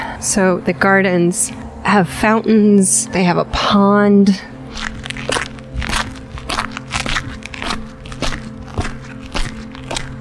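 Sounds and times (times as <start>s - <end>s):
low constant hum: 0.0s - 10.1s
speech: 0.2s - 4.9s
footsteps crunching over gravel on a garden path: 4.7s - 10.1s.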